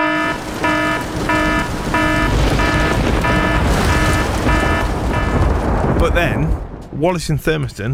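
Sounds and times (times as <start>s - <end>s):
loud electronic alarm tone pulsing: 0.0s - 5.5s
constant hiss of heavy rain: 0.0s - 6.8s
speech: 6.1s - 7.9s.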